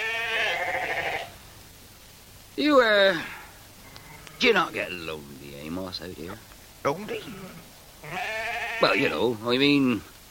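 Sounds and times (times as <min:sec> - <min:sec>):
sheep bleating on open moorland: 0:00.0 - 0:01.4, 0:03.0 - 0:05.0, 0:07.0 - 0:09.4
speech: 0:02.6 - 0:03.4, 0:04.4 - 0:10.1.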